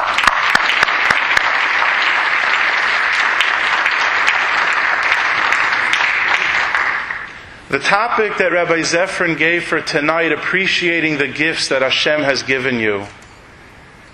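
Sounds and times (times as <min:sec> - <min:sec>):
applause from a sizable audience: 0:00.0 - 0:07.3
sharp individual claps: 0:00.0 - 0:07.4
speech: 0:07.8 - 0:13.2.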